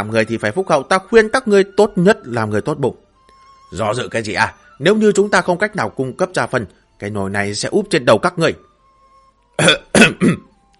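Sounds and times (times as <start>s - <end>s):
speech: 0.0s - 3.0s, 3.7s - 8.7s, 9.6s - 10.5s
light throat-clearing cough: 9.6s - 10.5s.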